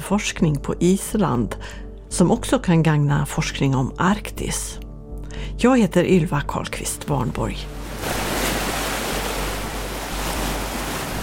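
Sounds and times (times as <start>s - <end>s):
speech: 0.1s - 4.8s, 5.4s - 8.2s
low wind rumble: 7.6s - 11.2s
sea waves washing onto the shore in Reykjavik: 7.6s - 11.2s.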